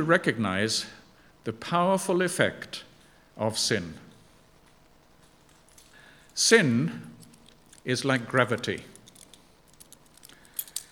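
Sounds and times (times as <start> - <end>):
speech: 0.0 - 4.0, 6.4 - 7.1, 7.8 - 8.9
keys jingling in a hand: 5.3 - 6.4, 7.1 - 10.9.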